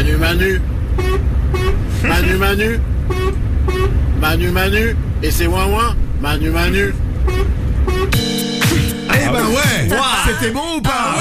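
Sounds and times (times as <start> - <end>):
steady low truck engine rumble: 0.0 - 11.1
speech: 0.3 - 1.3, 2.0 - 8.2, 9.3 - 11.1
truck horn honking a tune: 0.9 - 4.1, 7.2 - 9.6.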